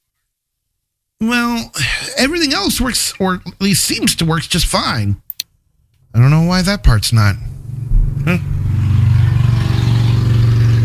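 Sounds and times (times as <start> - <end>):
speech: 1.2 - 5.2, 6.1 - 7.5, 8.2 - 8.5
sharp click: 5.3 - 5.5
motorcycle ridden outside on a cold day droning: 6.8 - 10.8.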